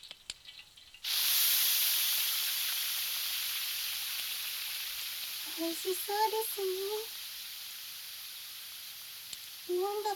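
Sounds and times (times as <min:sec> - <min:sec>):
meat sizzling in oil as it is grilled: 0:00.0 - 0:10.1
speech: 0:05.6 - 0:07.2, 0:09.7 - 0:10.1.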